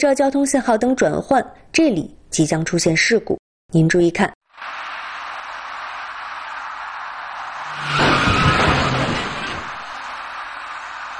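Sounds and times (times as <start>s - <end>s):
speech: 0.0s - 4.8s
loud broadband road noise: 4.5s - 11.1s
car tires squealing at an intersection: 4.6s - 11.1s.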